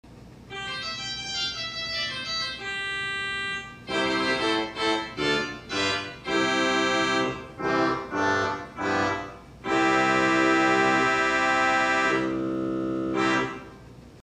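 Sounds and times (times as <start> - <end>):
theatre organ: 0.5 - 13.9
trumpet: 3.4 - 13.7.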